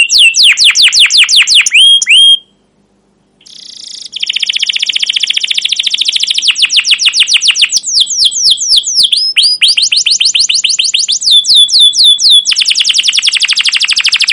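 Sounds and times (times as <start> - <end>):
canary singing fast high trill with slurred notes: 0.0 - 2.7, 3.4 - 14.3.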